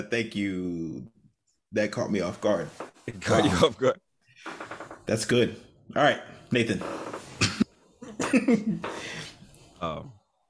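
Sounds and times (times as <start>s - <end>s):
speech: 0.0s - 7.0s, 8.3s - 9.2s, 9.8s - 10.2s
throat clearing from phlegm in the throat: 7.4s - 7.7s
coughing from phlegm in the throat: 7.4s - 8.8s.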